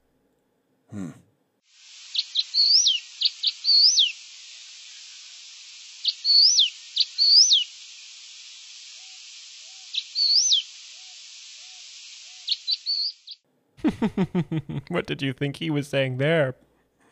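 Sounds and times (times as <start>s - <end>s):
speech: 0.9s - 1.2s, 13.8s - 16.7s
hiss: 1.0s - 17.1s
masked gnatcatcher calling: 1.9s - 13.4s
laughter: 13.8s - 14.9s.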